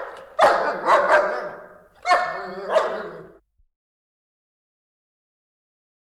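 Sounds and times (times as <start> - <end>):
large dogs barking deep rough woofs: 0.0 - 3.4.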